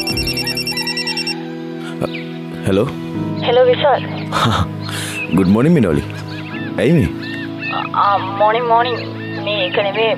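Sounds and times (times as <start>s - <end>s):
phone ringing with an electronic melodic ringtone: 0.0s - 1.5s
speech: 2.0s - 6.2s, 6.8s - 10.1s.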